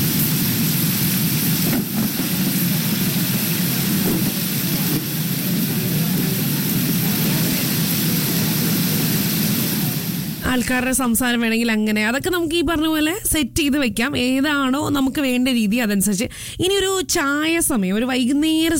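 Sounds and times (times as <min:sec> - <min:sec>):
rain falling on a rainy evening: 0:00.0 - 0:11.0
speech: 0:10.6 - 0:18.7.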